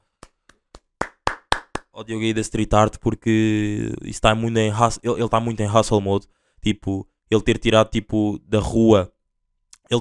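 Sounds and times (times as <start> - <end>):
single pair of hands clapping: 0.0 - 2.0
speech: 2.0 - 9.1.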